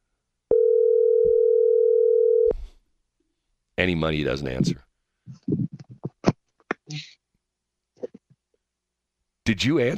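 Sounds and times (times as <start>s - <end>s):
telephone dial tone while placing a call: 0.5s - 2.5s
speech: 3.8s - 5.5s, 9.6s - 9.9s.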